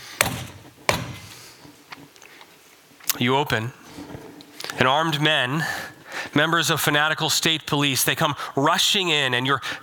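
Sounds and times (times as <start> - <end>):
heavy booming thuds pounding on a door: 0.2 - 1.3
speech: 3.2 - 3.8, 4.8 - 9.8.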